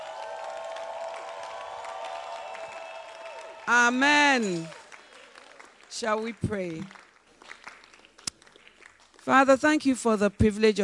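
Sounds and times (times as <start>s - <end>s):
crowd shouting praise: 0.0s - 5.8s
crowd clapping: 0.0s - 9.4s
speech: 3.7s - 4.8s, 6.0s - 7.0s, 9.3s - 10.8s.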